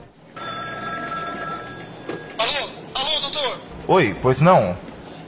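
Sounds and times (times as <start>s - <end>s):
telephone ringing in a doctor's home: 0.3s - 2.8s
speech: 3.9s - 4.9s.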